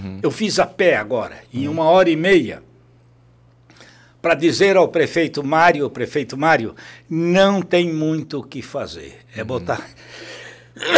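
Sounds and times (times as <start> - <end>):
speech: 0.0 - 2.7, 4.2 - 10.9
low steady hum: 0.0 - 10.9
sudden sharp sneeze: 10.8 - 10.9.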